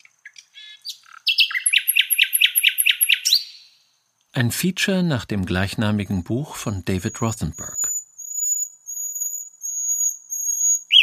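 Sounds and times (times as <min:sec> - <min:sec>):
nightingale singing: 0:00.0 - 0:04.0, 0:06.9 - 0:11.0
speech: 0:04.4 - 0:07.9.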